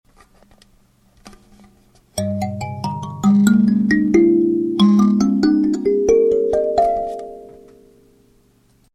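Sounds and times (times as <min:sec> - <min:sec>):
kalimba in G: 0:02.2 - 0:07.9.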